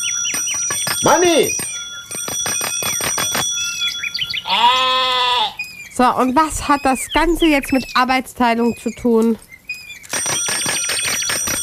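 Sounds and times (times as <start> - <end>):
bicycle bell ringing: 0.0 - 5.1, 10.0 - 11.6
speech: 1.0 - 1.7, 6.0 - 9.5.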